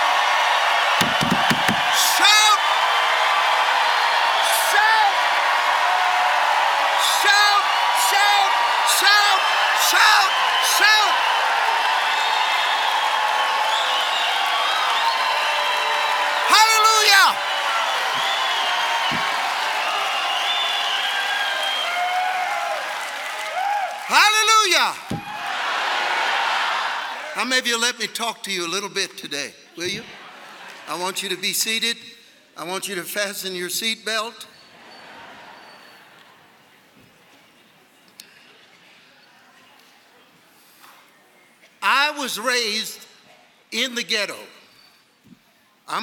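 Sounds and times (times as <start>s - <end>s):
clapping: 0.0s - 3.7s, 9.3s - 24.1s
high whoops and yells: 0.0s - 25.8s
large crowd cheering and shouting in praise: 0.0s - 27.5s
speech: 27.5s - 30.2s, 30.9s - 34.6s, 42.3s - 43.1s, 43.7s - 44.6s, 45.9s - 46.0s.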